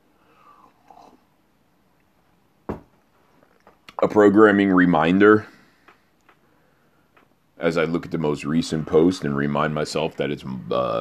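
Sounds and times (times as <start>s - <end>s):
person sipping water: 0.4s - 1.4s
speech: 4.0s - 5.5s, 7.7s - 10.9s.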